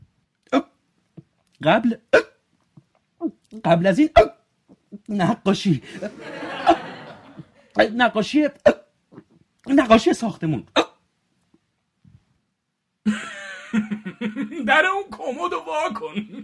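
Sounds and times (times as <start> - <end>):
person hiccuping: 0.5 - 0.8, 2.0 - 2.4, 4.2 - 5.0, 8.6 - 9.3, 10.7 - 11.0
speech: 1.6 - 2.3, 3.6 - 4.4, 5.1 - 6.8, 7.8 - 8.7, 9.8 - 10.7, 14.7 - 16.4
person laughing breathily: 6.0 - 7.5, 13.1 - 14.8, 15.9 - 16.4.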